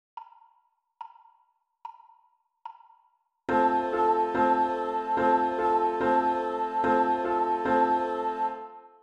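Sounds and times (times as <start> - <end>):
low voice and piano rhythm for children's music lessons: 3.5 - 9.0.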